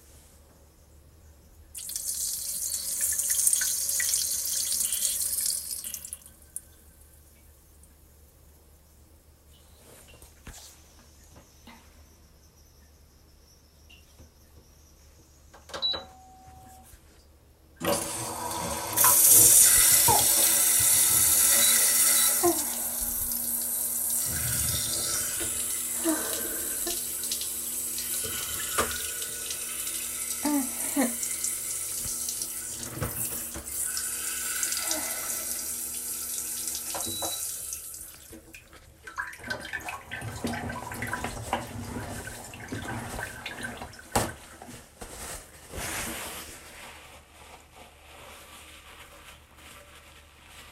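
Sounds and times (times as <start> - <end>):
toilet: 1.8 - 7.0, 17.8 - 50.4.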